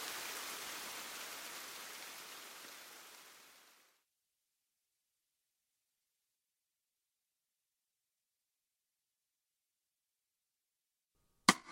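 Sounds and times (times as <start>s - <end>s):
steady rain falling in a dense hissing patter: 0.0s - 4.0s.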